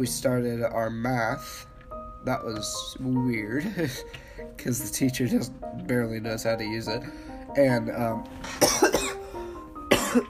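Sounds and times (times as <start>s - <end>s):
speech: 0.0s - 9.0s
person coughing harshly: 8.5s - 10.2s.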